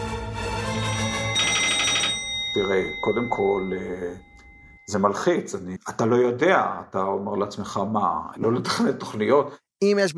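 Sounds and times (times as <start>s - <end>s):
telephone ringing with trilling electronic tone: 0.7s - 5.3s
speech: 2.6s - 4.3s, 4.9s - 10.1s.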